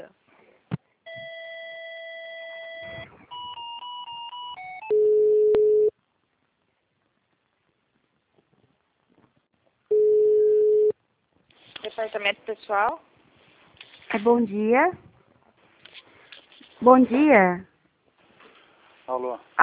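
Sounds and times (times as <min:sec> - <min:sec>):
loud steady telephone ring tones: 0:01.1 - 0:05.9, 0:09.9 - 0:10.9
telephone electronic beeping tones while a call is transferred: 0:01.1 - 0:05.9
speech: 0:12.1 - 0:13.1, 0:14.1 - 0:15.0, 0:16.8 - 0:17.7, 0:19.1 - 0:19.6.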